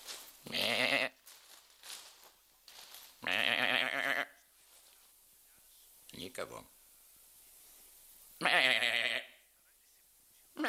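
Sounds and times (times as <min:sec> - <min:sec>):
person imitating a young goat kid bleating: 0:00.5 - 0:01.2, 0:03.2 - 0:04.4, 0:08.4 - 0:09.4
speech: 0:06.4 - 0:06.8.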